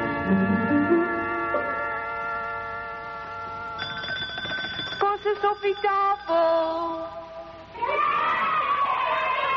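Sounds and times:
steady ringing tone: 0:00.2 - 0:07.7
crowd of children yelling: 0:07.7 - 0:09.5.

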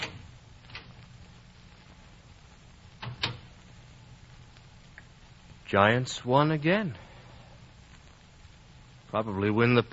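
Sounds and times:
low steady hum: 0:00.0 - 0:09.9
house door opening click: 0:03.0 - 0:03.4
speech: 0:05.7 - 0:07.0, 0:09.1 - 0:09.9.

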